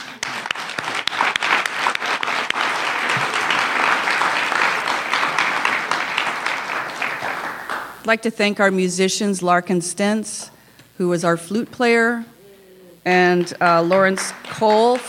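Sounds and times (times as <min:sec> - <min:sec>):
crowd at a gathering of speakers and workshop presenters applauding: 0:00.0 - 0:08.0, 0:13.4 - 0:15.0
speech: 0:08.0 - 0:12.3, 0:13.0 - 0:15.0.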